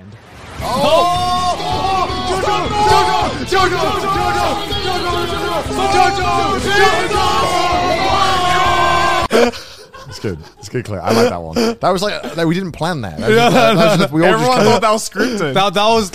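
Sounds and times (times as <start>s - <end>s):
group of young men screaming and yelling together: 0.6s - 9.3s
laughter: 0.6s - 12.6s, 13.2s - 16.0s
speech: 2.6s - 8.0s, 10.2s - 16.1s.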